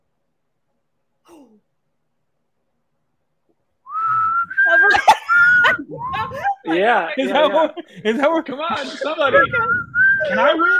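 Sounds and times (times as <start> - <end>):
person whistling a tune: 3.9 - 6.4, 9.6 - 10.7
laughter: 4.5 - 10.7
speech: 6.7 - 10.7.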